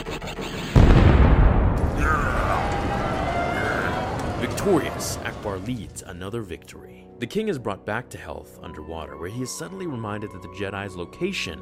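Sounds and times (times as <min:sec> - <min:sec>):
missiles fired in a space battle: 0:00.7 - 0:05.7
speech: 0:04.7 - 0:11.5.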